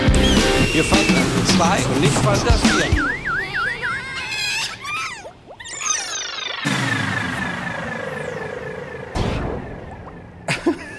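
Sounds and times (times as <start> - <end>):
cartoonish warbling whistles: 0.2 - 10.5
speech: 0.8 - 3.2
rising and falling sweeps: 5.6 - 10.7.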